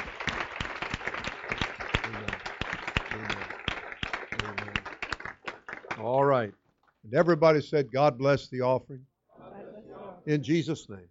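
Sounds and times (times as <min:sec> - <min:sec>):
large crowd clapping: 0:00.0 - 0:06.5
speech: 0:06.0 - 0:09.1, 0:10.3 - 0:11.0.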